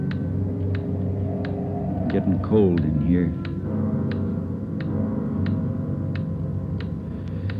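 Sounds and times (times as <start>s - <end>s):
loud clock ticking: 0.1s - 7.5s
speech: 2.1s - 3.5s.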